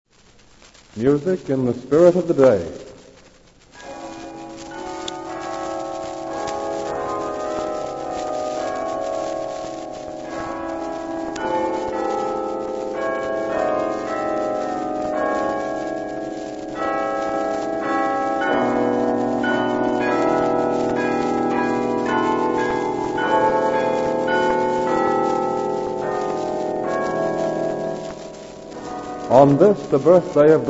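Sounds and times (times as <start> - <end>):
speech: 1.0 - 2.8, 29.5 - 30.6
church bells pealing: 3.8 - 30.6.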